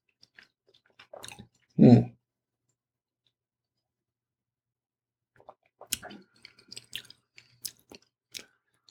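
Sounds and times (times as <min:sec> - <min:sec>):
soft wet mouth clicks and squelches: 0:00.2 - 0:01.7, 0:05.4 - 0:08.8.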